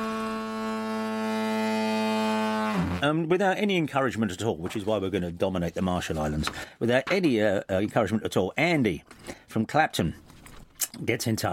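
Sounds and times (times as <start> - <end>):
deep throaty ship's foghorn blast: 0.0 - 3.0
speech: 2.8 - 10.2, 10.8 - 11.5.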